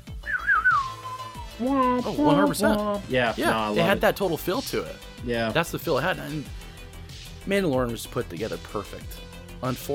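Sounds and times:
whistled TV theme tune in spaghetti western style: 0.0s - 2.6s
low musical backing: 0.6s - 9.9s
speech: 1.6s - 6.6s, 7.4s - 9.9s.

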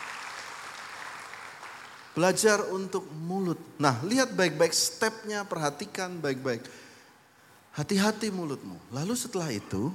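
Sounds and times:
church audience clapping together in praise: 0.0s - 2.3s
speech: 2.2s - 6.8s, 7.8s - 9.9s.

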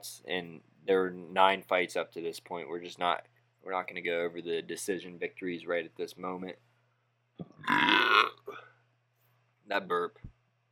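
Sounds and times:
speech: 0.0s - 6.7s, 7.4s - 8.7s, 9.7s - 10.3s
faint steady hum: 0.0s - 10.7s
long loud gravelly burp: 7.4s - 8.7s.

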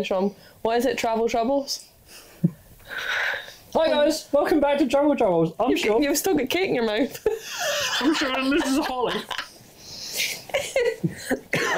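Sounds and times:
speech: 0.0s - 9.4s
sharp harsh raspy coughs: 11.1s - 11.7s.

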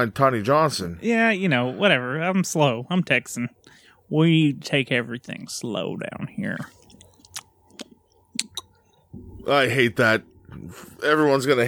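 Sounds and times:
speech: 0.0s - 6.8s, 9.4s - 11.6s
wet chewing of tobacco: 6.7s - 9.0s.

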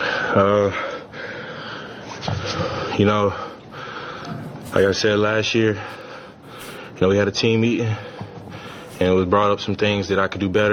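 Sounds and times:
speech: 0.4s - 1.0s, 3.0s - 3.5s, 4.7s - 6.0s, 7.0s - 8.1s, 9.0s - 10.7s
person breathing out heavily with a rasping rush of air: 0.8s - 10.7s.

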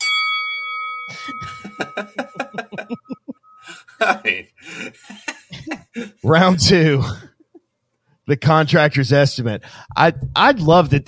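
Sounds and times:
bright bell strike: 0.0s - 3.7s
speech: 1.1s - 3.2s, 4.0s - 5.3s, 6.0s - 7.3s, 8.3s - 11.0s
people laughing: 1.1s - 7.6s.

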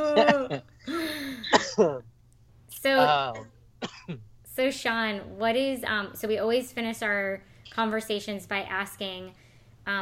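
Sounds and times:
person clearing throat: 0.0s - 0.7s, 1.4s - 2.0s, 3.3s - 4.3s
person giving a dry cough: 0.0s - 2.0s, 3.8s - 4.2s
speech: 0.2s - 0.7s, 4.1s - 10.0s.

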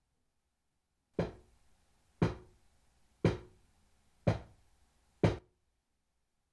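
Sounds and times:
loud sharp knocks on wood: 1.2s - 1.4s, 2.2s - 2.5s, 3.2s - 3.6s, 4.3s - 4.6s, 5.2s - 5.5s.

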